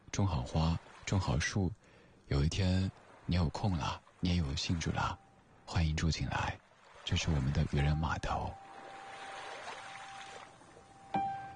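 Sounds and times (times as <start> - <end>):
light drizzle pattering on the sea surface at nightfall: 0.0 - 11.5
speech: 0.2 - 8.6
faint tone: 7.7 - 11.5.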